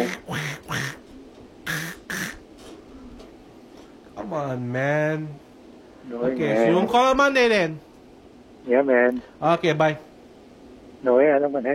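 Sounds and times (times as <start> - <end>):
person doing a cartoon duck voice choking on an apple: 0.0 - 1.0, 1.6 - 2.4
speech: 4.3 - 7.9, 8.6 - 10.1, 11.0 - 11.7.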